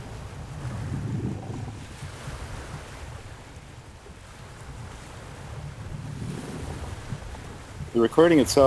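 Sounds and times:
gusty wind noise above the ocean: 0.0 - 8.6
ocean waves surging on an overcast windy day: 0.0 - 8.6
speech: 8.0 - 8.6.

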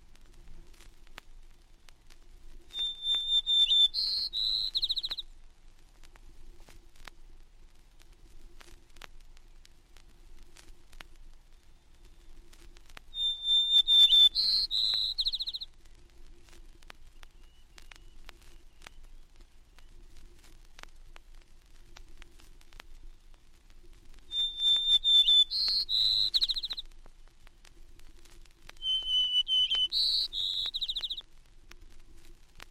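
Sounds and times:
faint hiss: 0.0 - 32.7
white-crowned sparrow singing: 2.8 - 5.2, 13.2 - 15.7, 24.3 - 26.8, 28.8 - 31.2.

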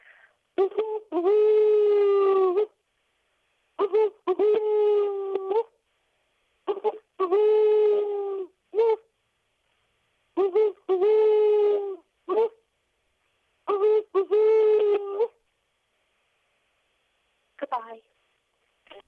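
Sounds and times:
woman imitating owl hoots in a phoned-in voice message: 0.6 - 2.8, 3.8 - 5.8, 6.7 - 9.1, 10.4 - 12.6, 13.7 - 15.4.

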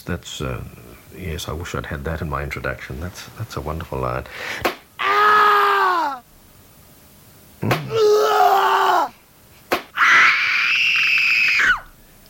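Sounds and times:
speech: 0.0 - 4.8
sharp smacking hits: 4.6 - 4.9, 7.6 - 8.0, 9.7 - 10.0
person screaming: 5.0 - 6.2, 7.8 - 9.2, 10.0 - 11.9.

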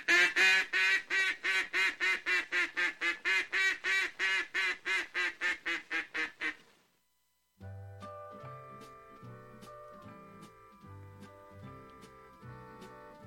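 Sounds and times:
duck call blowing loud nasal quacks: 0.0 - 6.7.

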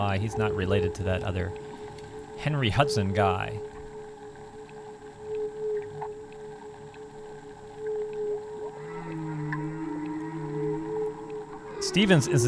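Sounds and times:
speech: 0.0 - 1.8, 2.4 - 3.8, 11.9 - 12.4
steady underwater hum: 0.0 - 12.4
whale calls underwater: 0.0 - 12.4.

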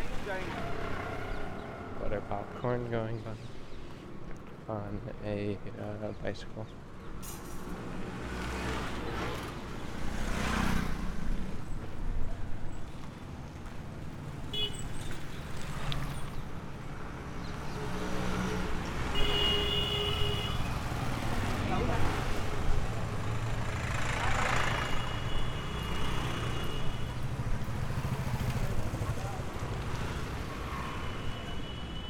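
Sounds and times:
indistinct voices: 0.0 - 3.2
busy street traffic rumble on Rata Yatra: 0.0 - 32.0
vehicles passing: 0.0 - 32.0
speech: 0.3 - 0.9, 2.1 - 3.6, 4.7 - 7.5.

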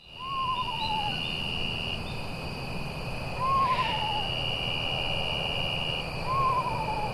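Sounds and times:
high-pitched drone of night insects: 0.0 - 7.1
owl hooting: 0.2 - 1.3, 3.4 - 4.4, 6.3 - 7.1.

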